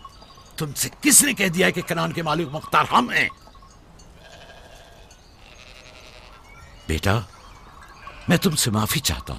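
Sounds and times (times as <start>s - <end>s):
speech: 0.6s - 3.4s, 6.9s - 7.3s, 8.3s - 9.3s
several sheep bleating: 1.4s - 2.5s, 4.2s - 6.4s, 8.0s - 8.6s.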